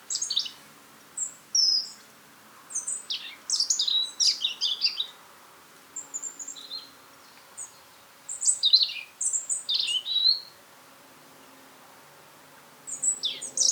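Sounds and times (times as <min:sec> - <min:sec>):
European robin singing, Erithacus rubecula: 0:00.0 - 0:00.6, 0:01.2 - 0:02.1, 0:02.7 - 0:05.2, 0:06.0 - 0:10.5, 0:12.9 - 0:13.6.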